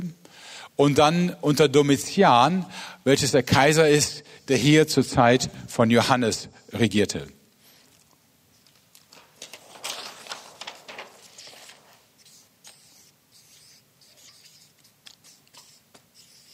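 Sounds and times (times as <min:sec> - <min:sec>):
speech: 0:00.8 - 0:07.4
marker squeaking and scratching across a board: 0:12.2 - 0:16.5.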